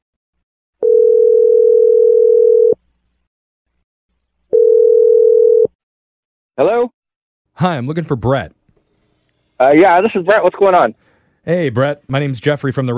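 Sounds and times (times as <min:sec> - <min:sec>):
long steady mid-pitched telephone ringing tones: 0:00.8 - 0:02.8, 0:04.5 - 0:05.7
speech: 0:07.6 - 0:08.6, 0:09.6 - 0:12.9.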